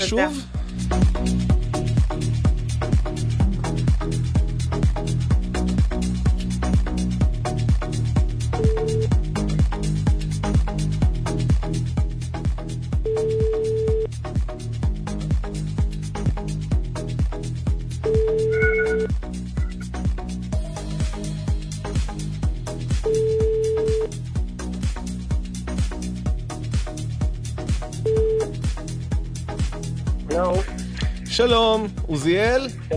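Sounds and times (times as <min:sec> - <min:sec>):
speech: 0:00.0 - 0:01.6, 0:31.4 - 0:32.9
music during a radio broadcast: 0:00.0 - 0:32.9
dialing beep: 0:08.6 - 0:09.1, 0:13.1 - 0:14.1, 0:18.1 - 0:19.8, 0:23.1 - 0:24.1, 0:28.0 - 0:28.5
telephone line ringing tones during a radio broadcast: 0:08.6 - 0:09.1, 0:13.1 - 0:14.1, 0:18.1 - 0:19.8, 0:23.1 - 0:24.1, 0:28.1 - 0:28.5.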